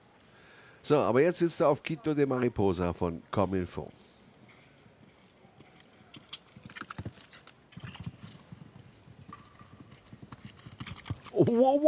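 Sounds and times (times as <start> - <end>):
speech: 0.9 - 4.0, 11.5 - 11.8
galloping horse hoofbeats: 5.0 - 11.8.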